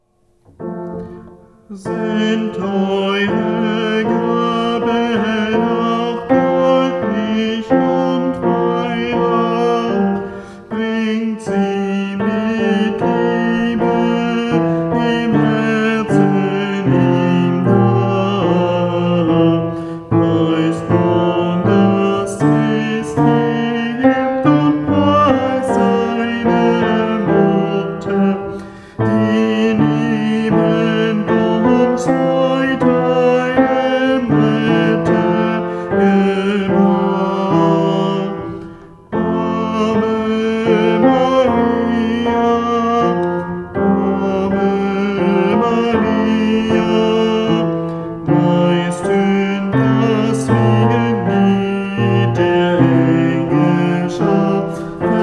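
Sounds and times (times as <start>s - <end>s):
tenor singing a lullaby as Advent music: 0.0s - 55.2s.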